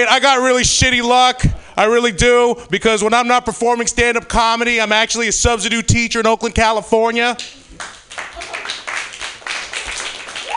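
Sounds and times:
speech: 0:00.0 - 0:07.6
sparse polite applause from a small stand-up comedy audience: 0:07.8 - 0:10.5.

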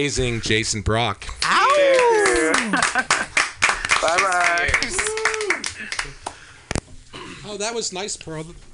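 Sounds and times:
speech: 0:00.0 - 0:02.0, 0:02.6 - 0:03.3, 0:07.5 - 0:08.7
hand claps from a small group in a studio: 0:01.4 - 0:06.4
laughter: 0:02.6 - 0:03.4.

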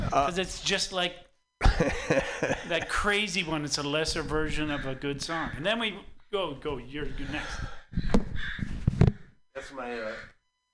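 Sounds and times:
speech: 0:00.2 - 0:08.7, 0:09.6 - 0:10.4
laughter: 0:01.6 - 0:03.0
crows cawing notification sound: 0:04.6 - 0:05.8, 0:08.2 - 0:09.2.

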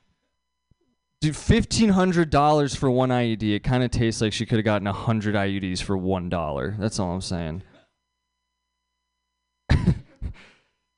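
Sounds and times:
speech: 0:01.2 - 0:07.7
audience member coughing: 0:07.6 - 0:08.0, 0:09.7 - 0:10.6.

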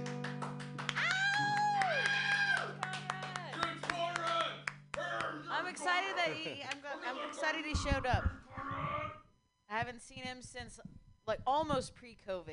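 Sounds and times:
audience clapping as a musician comes on stage: 0:00.0 - 0:05.5
whoops and cheering voices: 0:00.9 - 0:02.8
speech: 0:05.9 - 0:08.4, 0:09.8 - 0:12.5.

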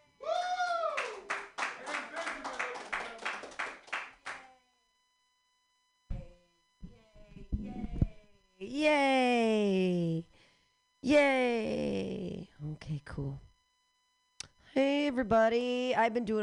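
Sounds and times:
person cheering: 0:00.2 - 0:03.4
small crowd clapping: 0:00.9 - 0:04.5
speech: 0:08.6 - 0:10.2, 0:11.1 - 0:11.8, 0:13.0 - 0:13.4, 0:14.8 - 0:16.4.

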